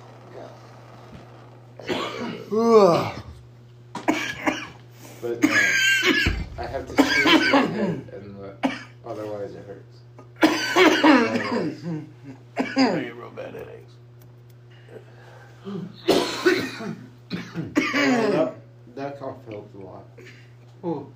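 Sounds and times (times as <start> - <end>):
steady low electrical hum: 0.0 - 21.1
harsh coughing: 1.8 - 3.2, 4.0 - 4.8, 5.4 - 9.0, 10.3 - 13.1, 15.7 - 18.6
speech: 2.5 - 3.2.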